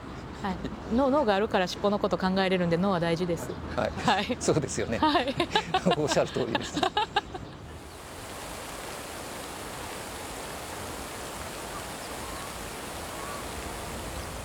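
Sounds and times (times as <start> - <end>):
speech: 0.4 - 7.2
laughter: 4.0 - 7.8
water fountain splashing in a park: 7.7 - 14.4.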